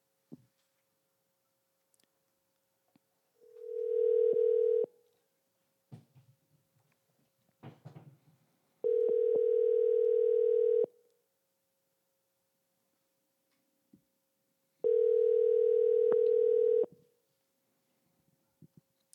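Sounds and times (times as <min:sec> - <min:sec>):
buzzing phone ringback tones on an outgoing call: 0:03.4 - 0:04.9, 0:08.8 - 0:10.9, 0:14.8 - 0:16.9.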